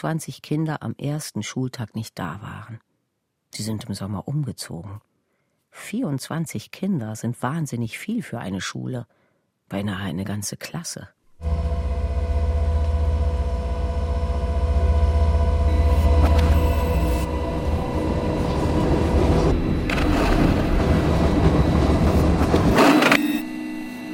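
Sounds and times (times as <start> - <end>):
speech: 0.0 - 2.9, 3.6 - 5.1, 5.7 - 11.7
train rumbling at Gare de Lyon rail station: 11.4 - 22.8.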